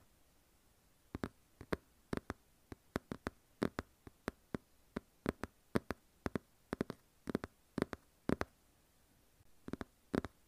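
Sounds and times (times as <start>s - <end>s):
faint low hum: 0.0s - 10.4s
sharp crisp irregular tapping: 1.2s - 8.5s, 9.6s - 10.4s.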